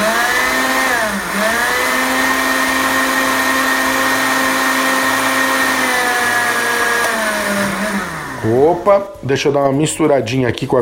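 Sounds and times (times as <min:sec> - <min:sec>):
blender grinding dry ingredients into flour: 0:00.0 - 0:09.1
speech: 0:08.7 - 0:10.8.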